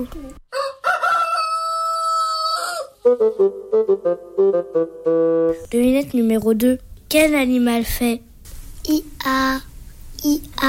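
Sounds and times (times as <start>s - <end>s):
speech: 0.0s - 0.4s, 3.1s - 10.6s
rooster crowing: 0.5s - 3.1s.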